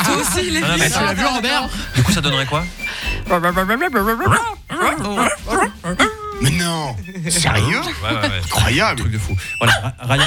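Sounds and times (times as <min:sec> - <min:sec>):
laughter: 0:00.0 - 0:10.2
speech: 0:00.2 - 0:10.2
people imitating dogs barking and whimpering with their voices: 0:03.2 - 0:06.6, 0:07.4 - 0:10.2.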